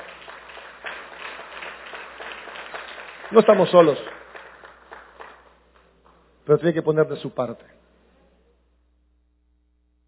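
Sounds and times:
audience applauding: 0.0s - 6.3s
speech: 3.3s - 4.2s, 6.5s - 7.8s.

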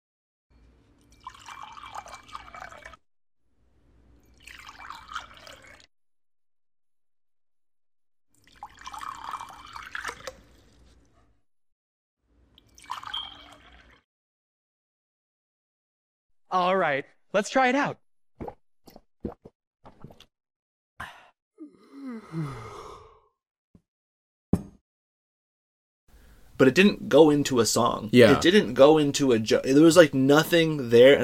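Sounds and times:
water poured into a glass: 1.0s - 3.0s, 4.2s - 5.9s, 8.4s - 10.8s, 12.6s - 14.0s
speech: 16.5s - 18.6s, 26.6s - 31.2s.

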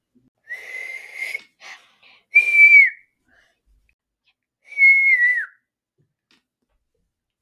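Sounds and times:
person whistling: 0.4s - 1.5s, 2.3s - 3.0s, 4.7s - 5.6s.

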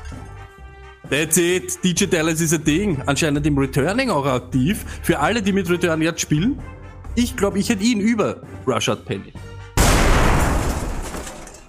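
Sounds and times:
speech: 1.1s - 9.5s
explosion sound effect: 9.8s - 11.3s.

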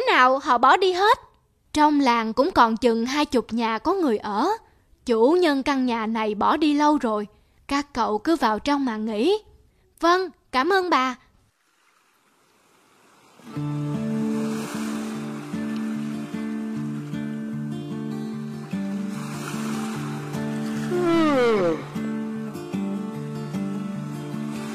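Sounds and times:
speech: 0.2s - 11.2s, 13.5s - 14.0s
ocean waves breaking on the shore: 11.6s - 24.7s
melodic music track: 15.7s - 24.5s.

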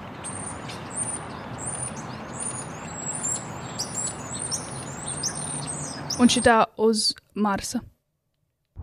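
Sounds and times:
birds chirping and tweeting: 0.0s - 6.6s
speech: 6.2s - 7.9s.

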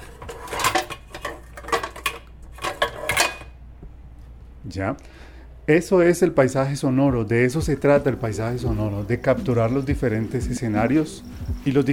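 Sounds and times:
dishes and pots clattering in a kitchen: 0.0s - 3.6s
speech: 4.7s - 11.9s.

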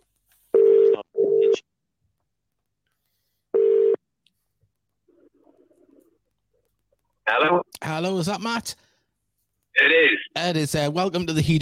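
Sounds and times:
telephone ringback tone on an outgoing call: 0.6s - 1.6s, 3.6s - 4.0s
speech: 7.3s - 8.8s, 9.8s - 11.5s.

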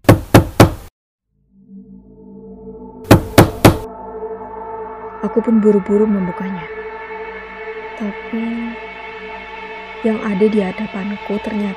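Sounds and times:
sharp knocks on a room door: 0.0s - 0.8s, 3.1s - 3.8s
low rising tonal drone: 1.3s - 11.7s
speech: 5.3s - 6.8s, 8.0s - 8.9s, 10.0s - 11.7s.

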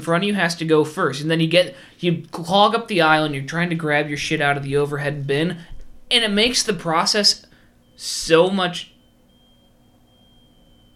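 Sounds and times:
speech: 0.0s - 7.4s, 8.0s - 8.9s
fire alarm tone in a building: 7.5s - 10.9s.

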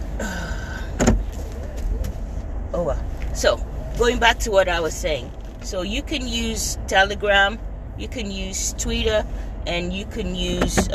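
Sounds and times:
low steady vehicle hum: 0.0s - 10.9s
car door opening in a parking spot: 0.7s - 2.3s, 5.0s - 5.8s, 10.5s - 10.9s
car door thump: 0.9s - 2.2s
speech: 2.8s - 10.9s.

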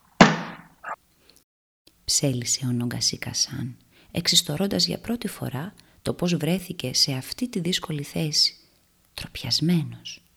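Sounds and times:
door slammed shut with a loud bang: 0.2s - 0.7s
speech: 2.1s - 8.6s, 9.2s - 10.2s.

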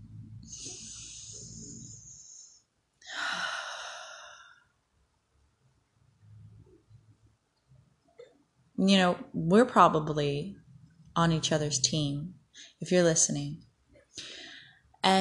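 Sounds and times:
quiet low rumbling: 0.0s - 2.2s
person breathing deeply during a calming exercise: 0.4s - 4.7s, 14.2s - 14.8s
speech: 8.8s - 10.6s, 11.2s - 14.4s, 15.0s - 15.2s.

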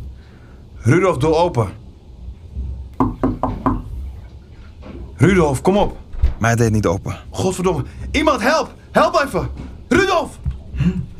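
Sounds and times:
low rumble: 0.0s - 11.1s
speech: 0.8s - 1.8s, 5.2s - 11.1s
knocking on a bedroom door: 3.0s - 3.9s.

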